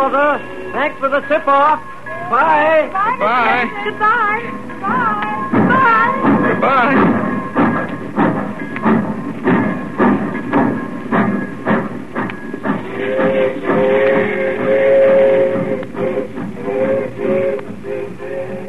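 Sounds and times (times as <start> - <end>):
speech: 0.0 - 8.0
train pulling away from a station chugging and clattering: 0.0 - 18.6
sustained whistle-like train tone: 12.8 - 18.6.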